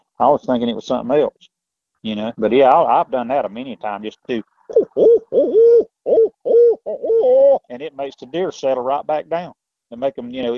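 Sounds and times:
speech: 0.2s - 6.3s, 6.9s - 10.5s
person imitating barred owl hoots to calm deer: 4.7s - 7.7s.

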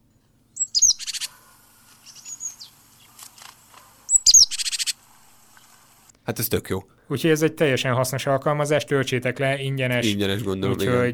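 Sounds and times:
great tit calling: 0.6s - 3.1s, 4.1s - 5.0s
speech: 6.3s - 11.1s.

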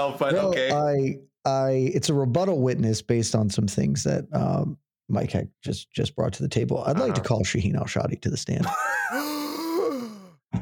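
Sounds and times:
speech: 0.0s - 9.3s
person gasping in surprise: 9.1s - 10.4s
short breathy intake: 9.1s - 10.4s.

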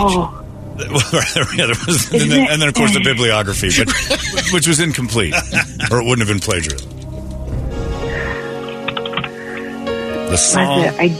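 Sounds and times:
speech: 0.0s - 7.0s, 10.3s - 11.1s
steady low hum: 0.0s - 11.0s
laughter: 0.8s - 6.4s
typing on a computer keyboard: 8.7s - 9.4s.

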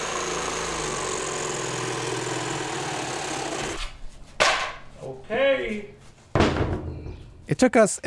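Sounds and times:
power saw cutting through wood: 0.0s - 4.0s
speech: 5.3s - 6.0s, 7.5s - 8.0s.

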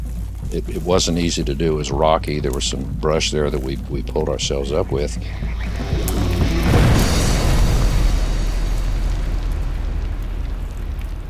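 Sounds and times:
speech: 0.5s - 6.8s
dynamite and powder explosion echoing through a canyon: 4.9s - 11.2s.

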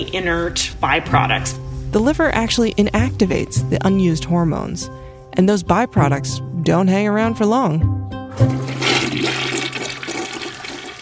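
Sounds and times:
speech: 0.0s - 8.6s
toilet flushing: 8.3s - 10.9s.

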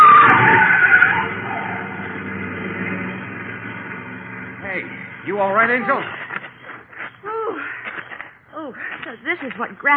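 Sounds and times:
car tires skidding and squealing: 0.0s - 6.6s
car engine rumble: 0.0s - 9.9s
speech: 5.4s - 6.2s, 9.4s - 9.9s.

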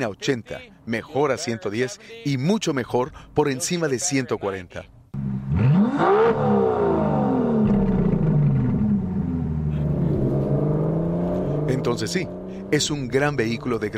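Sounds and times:
speech: 0.0s - 5.3s, 11.8s - 13.9s
powerful sports car engine revving and accelerating: 5.2s - 13.9s.

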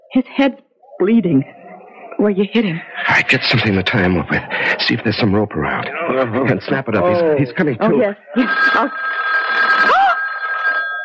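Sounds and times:
speech: 0.1s - 1.6s, 2.2s - 9.2s
laughter: 3.0s - 8.9s
telephone bell ringing: 8.3s - 11.0s.

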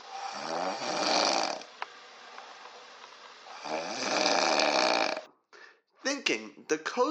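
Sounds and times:
loud rasping rattling snores: 0.0s - 1.7s, 3.5s - 5.3s
faint breath: 5.5s - 6.0s
speech: 6.3s - 7.0s.

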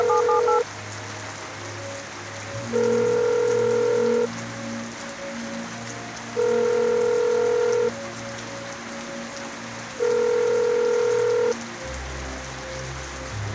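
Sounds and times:
telephone ringback tone from a payphone call: 0.0s - 0.6s, 2.8s - 4.3s, 6.4s - 7.9s, 10.0s - 11.5s
steady rain hissing: 0.0s - 13.5s.

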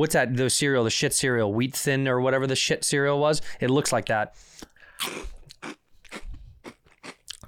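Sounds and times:
speech: 0.0s - 5.8s
crunching on an ube-filled pillow snack: 4.6s - 7.4s.

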